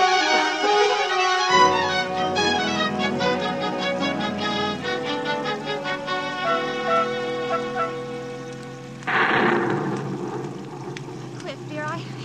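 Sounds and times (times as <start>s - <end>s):
dramatic orchestral music: 0.0s - 11.4s
rainstorm: 0.0s - 12.2s
loud burst of thunder: 9.1s - 12.2s.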